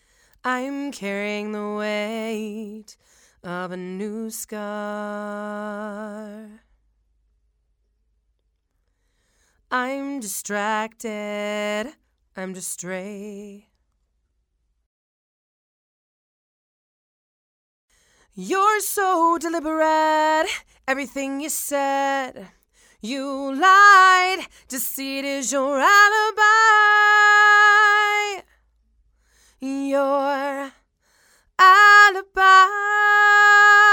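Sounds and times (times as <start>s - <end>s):
woman singing torch song: 0.4s - 6.6s, 9.7s - 13.6s, 18.4s - 28.5s, 29.6s - 30.8s, 31.6s - 33.9s.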